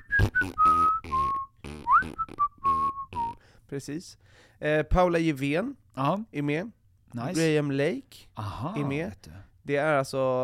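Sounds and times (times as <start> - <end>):
whistled melody: 0.0 - 3.4
speech: 3.7 - 10.4.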